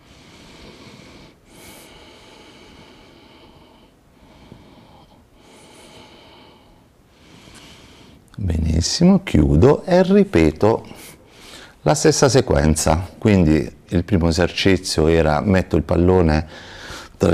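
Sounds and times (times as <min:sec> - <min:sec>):
person breathing slowly in and out during a stretching exercise: 0:00.0 - 0:08.3, 0:10.9 - 0:11.8, 0:16.5 - 0:17.2
speech: 0:08.4 - 0:11.0, 0:11.8 - 0:17.3.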